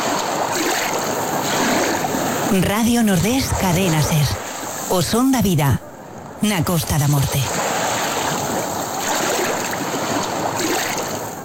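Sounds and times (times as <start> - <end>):
ocean waves on a beach: 0.0 - 11.4
speech: 2.5 - 7.4.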